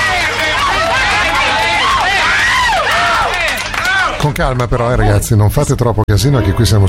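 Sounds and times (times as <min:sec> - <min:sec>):
crowd cheering and whooping: 0:00.0 - 0:04.2
applause: 0:00.0 - 0:04.4
speech: 0:04.4 - 0:06.8.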